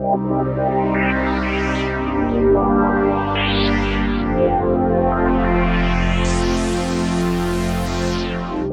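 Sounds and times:
big synth pad: 0.0s - 8.7s.

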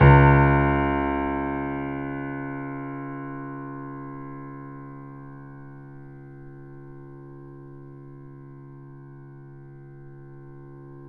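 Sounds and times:
grand piano note: 0.0s - 4.9s.

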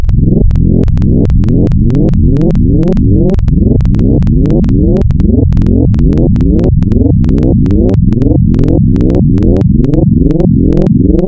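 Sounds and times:
FM Dual wavetable frequency modulation synth tone: 0.0s - 11.2s.

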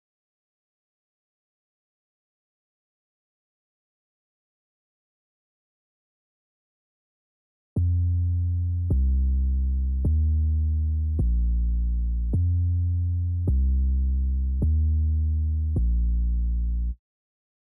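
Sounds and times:
bass in F at 105 BPM: 7.8s - 17.0s.

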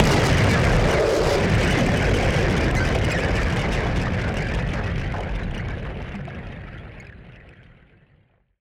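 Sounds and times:
noise bomb: 0.0s - 6.8s.

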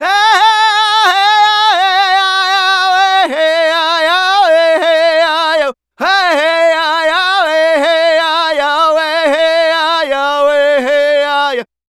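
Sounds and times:
Native American vocals: 0.0s - 11.7s.

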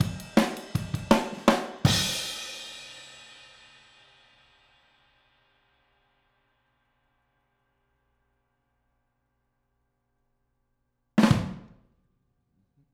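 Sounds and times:
stereo overhead drums at 162 BPM: 0.0s - 5.6s, 11.2s - 11.8s.

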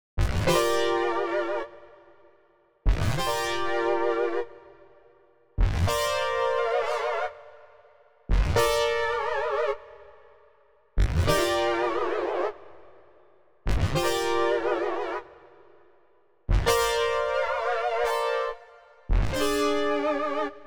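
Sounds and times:
synthesizer in G minor: 0.2s - 2.2s, 2.9s - 4.9s, 5.6s - 7.7s, 8.3s - 10.3s, 11.0s - 13.0s, 13.7s - 15.6s, 16.5s - 20.6s.

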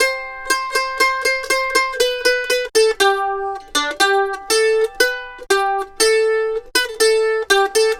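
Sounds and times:
Appalachian mandolin lead: 0.0s - 7.9s.

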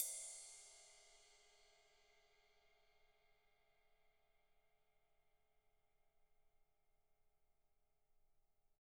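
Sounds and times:
cymbal from cymbal kits: 0.0s - 4.0s.

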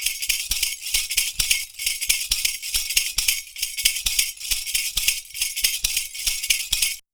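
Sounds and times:
percussion: 0.0s - 7.0s.

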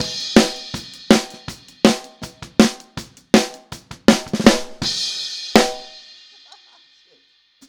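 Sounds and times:
snare drum outro: 0.0s - 6.0s.

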